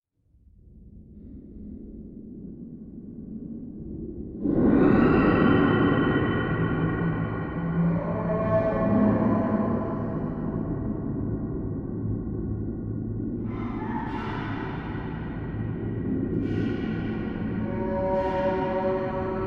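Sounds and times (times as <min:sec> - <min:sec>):
horror rumble: 0:00.2 - 0:19.4
dungeon drone: 0:04.7 - 0:11.1, 0:13.4 - 0:19.4.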